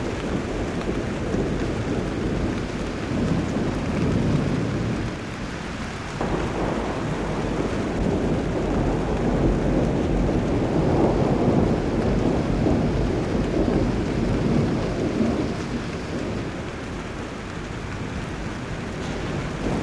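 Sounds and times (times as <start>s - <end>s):
rain: 0.0s - 19.8s
wind: 0.0s - 19.8s.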